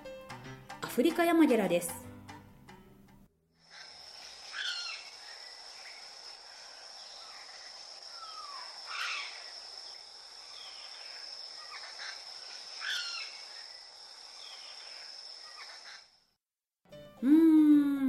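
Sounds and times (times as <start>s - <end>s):
speech: 1.0s - 2.0s
woodpecker calling: 3.6s - 16.2s
steady high insect drone: 3.6s - 16.3s
hissy outdoor ambience: 3.6s - 16.4s.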